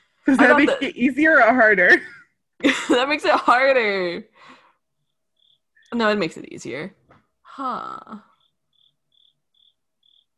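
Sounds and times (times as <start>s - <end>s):
speech: 0.2s - 4.5s, 5.9s - 7.0s, 7.6s - 8.3s
crickets chirping: 4.6s - 6.7s, 7.8s - 10.3s.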